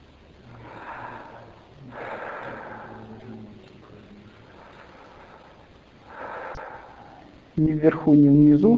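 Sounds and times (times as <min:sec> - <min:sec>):
slow deep breathing: 0:00.0 - 0:07.6
soft low humming tone: 0:00.0 - 0:08.7
speech: 0:07.6 - 0:08.7.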